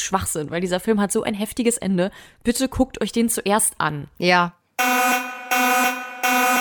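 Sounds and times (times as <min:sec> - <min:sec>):
speech: 0:00.1 - 0:05.2
loud harsh alarm buzzer blaring: 0:04.8 - 0:06.5.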